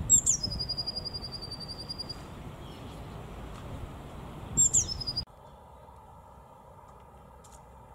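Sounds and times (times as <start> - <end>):
Eurasian blue tit singing: 0.0 - 3.3, 4.6 - 5.2.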